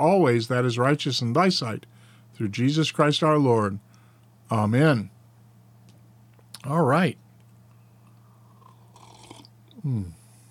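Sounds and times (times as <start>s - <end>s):
speech: 0.0s - 3.9s, 4.5s - 5.2s, 6.6s - 7.2s, 9.8s - 10.2s
steady low electrical hum: 0.0s - 10.5s
slurping deep sip of hot tea: 8.3s - 9.5s.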